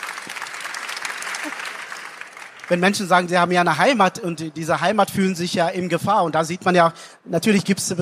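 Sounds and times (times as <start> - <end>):
audience applause: 0.0 - 3.0
speech: 2.7 - 8.0.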